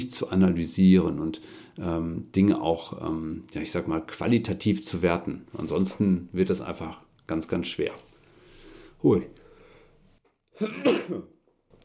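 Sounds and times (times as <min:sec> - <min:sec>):
speech: 0:00.0 - 0:08.1, 0:09.0 - 0:09.4, 0:10.6 - 0:11.3
faint sniff: 0:08.2 - 0:10.2
person sneezing: 0:10.6 - 0:11.3.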